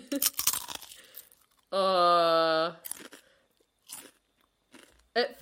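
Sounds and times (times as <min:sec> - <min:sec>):
salt and vinegar crisps being bitten and crunched: 0:00.2 - 0:01.7, 0:02.8 - 0:05.1.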